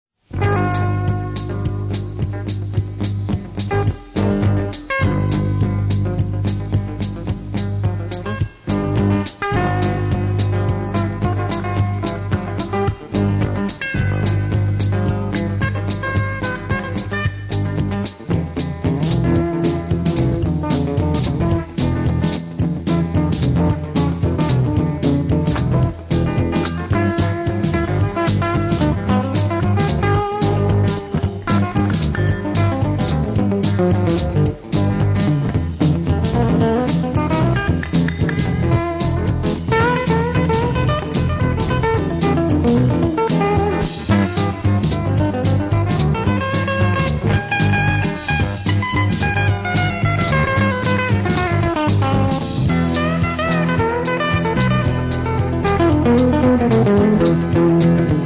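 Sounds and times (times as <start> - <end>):
funk guitar: 0.2 - 58.2.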